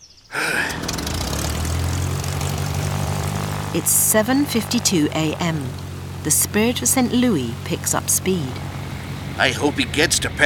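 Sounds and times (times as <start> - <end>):
propeller airplane engine starting up: 0.4 - 10.4
speech: 3.7 - 8.7, 9.4 - 10.4.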